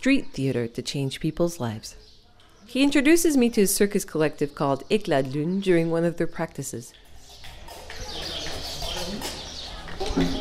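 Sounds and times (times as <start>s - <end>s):
speech: 0.0s - 2.1s, 2.7s - 7.0s
birds chirping and calling around nesting hangars: 0.0s - 10.3s
faint murmur of voices: 7.7s - 10.3s.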